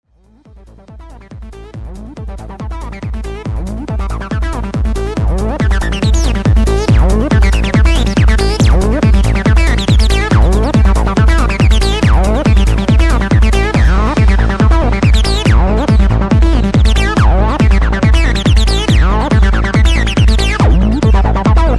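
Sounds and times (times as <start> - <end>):
Access Virus C synthesizer 303 sound: 1.6 - 21.7.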